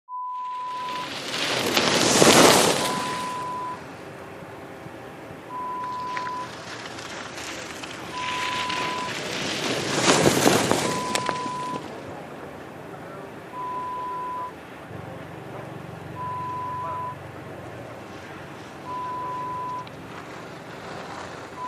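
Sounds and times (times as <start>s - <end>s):
ski slope ambience: 0.1s - 21.6s.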